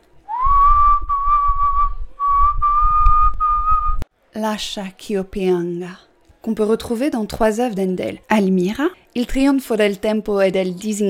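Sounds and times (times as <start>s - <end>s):
person whistling a slow opera aria melody: 0.3s - 4.0s
speech: 4.4s - 11.0s.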